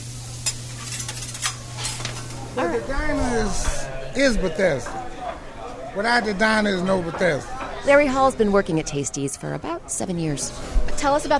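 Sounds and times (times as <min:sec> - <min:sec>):
food sizzling and crackling on a hot griddle: 0:00.0 - 0:04.9
brief utensil clinks or scrapes: 0:00.4 - 0:02.4
speech: 0:02.6 - 0:05.0, 0:06.0 - 0:11.3.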